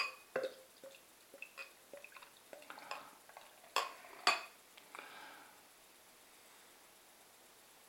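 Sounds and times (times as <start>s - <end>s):
beer poured from a bottle into a glass: 0.0s - 4.6s
faint fizzing wash of settling beer: 0.0s - 4.6s.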